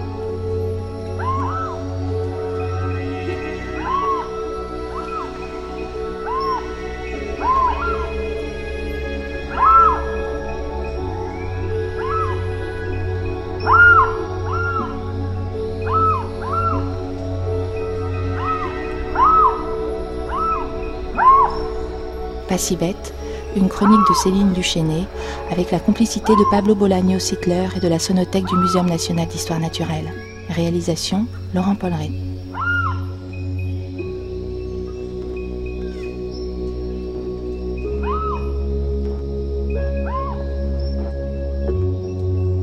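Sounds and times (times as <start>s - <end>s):
low steady droning background: 0.0s - 42.6s
bird giving harsh alarm cries when approached: 1.2s - 1.9s, 2.6s - 5.4s, 6.0s - 8.3s, 9.5s - 10.3s, 11.7s - 13.0s, 13.6s - 15.0s, 15.8s - 17.0s, 18.2s - 21.8s, 23.2s - 27.4s, 32.0s - 33.6s, 37.9s - 38.7s, 39.8s - 41.0s
speech: 22.6s - 32.2s.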